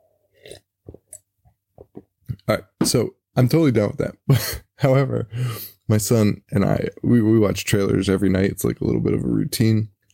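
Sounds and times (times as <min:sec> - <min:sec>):
person slurping coffee: 0:00.3 - 0:01.2
speech: 0:02.5 - 0:09.9.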